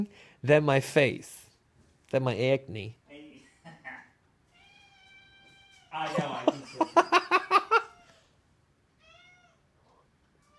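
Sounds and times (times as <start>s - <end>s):
speech: 0.0s - 1.4s, 2.1s - 3.0s, 6.0s - 6.5s
person laughing: 3.6s - 4.2s, 6.0s - 8.0s
cat meowing: 4.5s - 6.1s, 9.0s - 9.7s.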